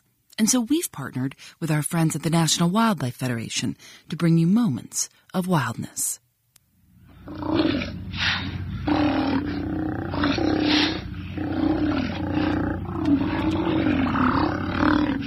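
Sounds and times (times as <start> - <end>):
speech: 0.4 - 6.2, 7.3 - 9.6
Steller sea lions growling and roaring at rookeries on the northern Pacific coast: 7.1 - 15.2.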